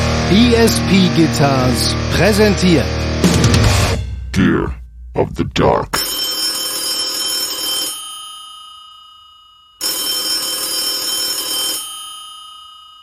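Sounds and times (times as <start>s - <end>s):
speech: 0.3s - 3.1s, 4.4s - 6.0s
1970s telephone bell ringing: 6.0s - 13.0s.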